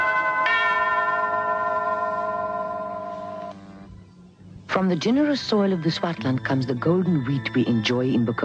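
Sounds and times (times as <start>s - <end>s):
two-note ding-dong bell chime: 0.0s - 3.6s
speech: 4.8s - 8.4s.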